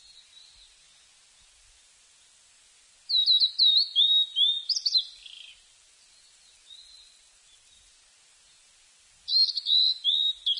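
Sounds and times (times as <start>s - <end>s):
Blue-and-white flycatcher singing: 3.1s - 7.8s, 9.3s - 10.5s.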